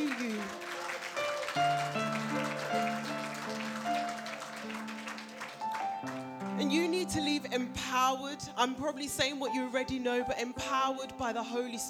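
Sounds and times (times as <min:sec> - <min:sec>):
audience clapping: 0:00.0 - 0:07.4
speech: 0:07.9 - 0:11.8.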